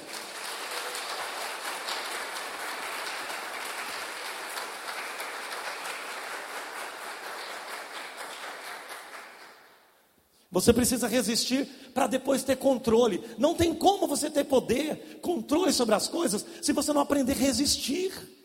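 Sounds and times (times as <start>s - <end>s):
audience applauding: 0.0s - 9.8s
speech: 10.5s - 18.4s.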